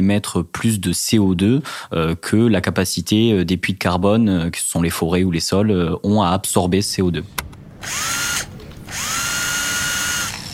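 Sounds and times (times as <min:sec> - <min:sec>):
speech: 0:00.0 - 0:08.4
power drill whirring while putting up a shelf: 0:07.8 - 0:10.5.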